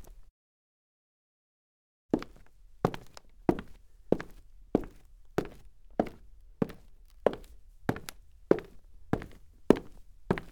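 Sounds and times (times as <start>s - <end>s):
soft Foley footsteps on wood: 2.2s - 10.4s.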